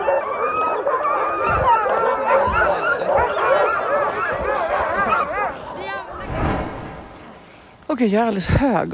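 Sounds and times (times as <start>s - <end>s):
excited sled dogs barking, yipping and howling: 0.0s - 6.3s
speech: 8.0s - 8.9s.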